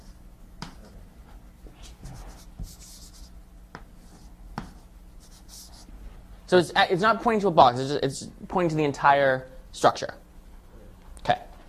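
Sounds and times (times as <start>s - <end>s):
pen or marker scratching while sketching a hand-drawn diagram: 1.8s - 3.3s, 4.0s - 5.9s
speech: 6.5s - 10.2s.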